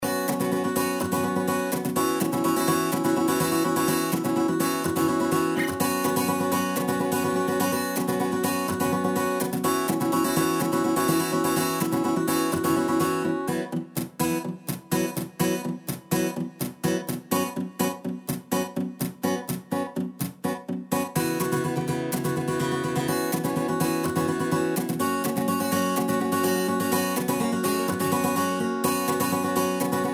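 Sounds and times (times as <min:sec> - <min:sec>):
clean guitar: 0:00.0 - 0:30.1.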